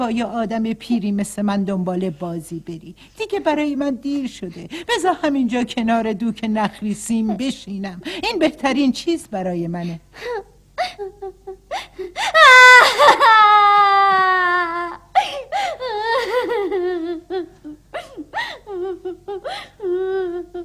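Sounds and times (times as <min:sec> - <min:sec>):
speech: 0:00.0 - 0:11.4
girl wailing and sobbing: 0:10.3 - 0:20.6.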